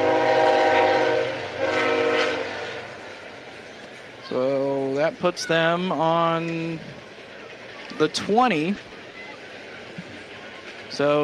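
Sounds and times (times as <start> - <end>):
train horn blaring: 0.0 - 3.2
passing train rumble: 0.0 - 11.2
speech: 5.1 - 7.0, 8.0 - 8.9, 11.0 - 11.2.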